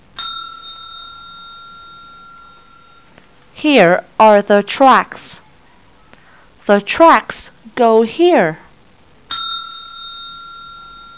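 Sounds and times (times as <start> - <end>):
bright bell chime: 0.2 - 3.2, 9.3 - 11.1
speech: 3.6 - 5.4, 6.7 - 8.6.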